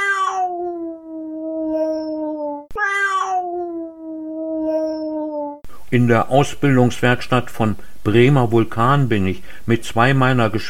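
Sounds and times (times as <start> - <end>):
cat meowing in a plaintive wail: 0.0 - 5.6
speech: 5.9 - 10.6.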